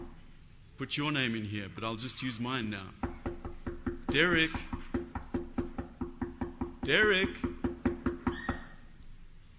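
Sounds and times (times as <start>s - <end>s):
speech: 0.8s - 3.1s, 4.1s - 4.8s, 6.9s - 7.5s
knocking on a wooden door: 3.0s - 8.8s.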